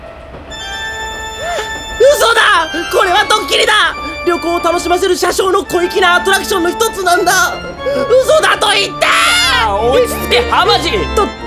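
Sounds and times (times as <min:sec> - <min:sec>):
metallic train wheel squeal: 0:00.0 - 0:10.2
passenger train running on rails: 0:00.0 - 0:11.4
laughter: 0:01.4 - 0:11.4
speech: 0:02.6 - 0:11.4.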